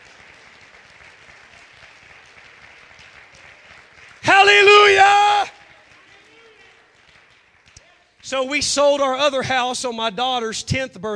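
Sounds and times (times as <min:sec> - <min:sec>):
crowd clapping: 0:00.0 - 0:08.8
speech: 0:08.3 - 0:11.1.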